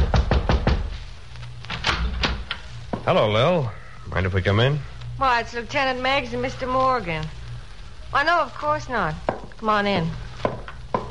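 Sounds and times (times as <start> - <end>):
knocking on an apartment door: 0.0 - 1.0, 9.3 - 9.5, 10.4 - 11.0
speech: 3.1 - 7.4, 8.1 - 10.2.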